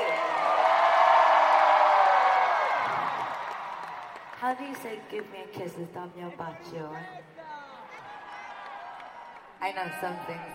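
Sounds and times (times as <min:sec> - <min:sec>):
large audience screaming and cheering: 0:00.0 - 0:04.4, 0:07.2 - 0:10.5
speech: 0:04.5 - 0:07.3, 0:09.6 - 0:10.5.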